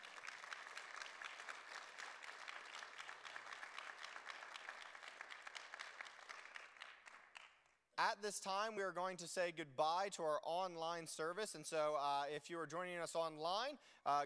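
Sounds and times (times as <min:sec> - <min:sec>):
audience applauding: 0:00.0 - 0:07.7
speech: 0:08.0 - 0:14.2.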